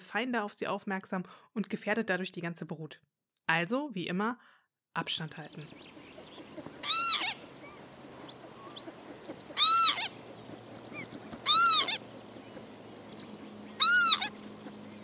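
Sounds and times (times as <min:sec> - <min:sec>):
speech: 0:00.1 - 0:06.0
wheezy northern lapwing calls: 0:05.7 - 0:15.0.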